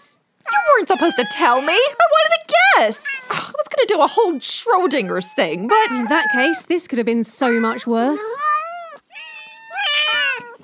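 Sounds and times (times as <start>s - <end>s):
several cats meowing: 0.5s - 6.7s, 7.4s - 10.6s
speech: 0.8s - 8.6s.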